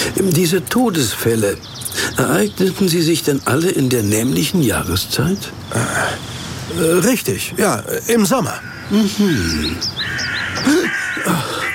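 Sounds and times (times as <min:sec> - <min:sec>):
smaller birds chirping faintly: 0:00.0 - 0:11.7
speech: 0:00.2 - 0:11.0
crows cawing harshly: 0:08.4 - 0:11.7.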